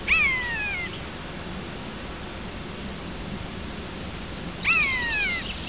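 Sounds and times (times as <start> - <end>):
faint high chirps: 0.1 - 0.9, 4.6 - 5.6
common buzzard descending mews: 0.1 - 1.0, 4.6 - 5.5.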